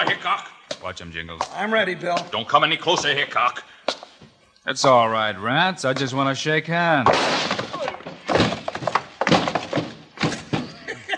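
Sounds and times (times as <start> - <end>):
speech: 0.0 - 3.7, 4.6 - 7.6
man thrown overhead tumbling down a flight of stairs: 7.3 - 11.0
laughter: 10.3 - 11.1.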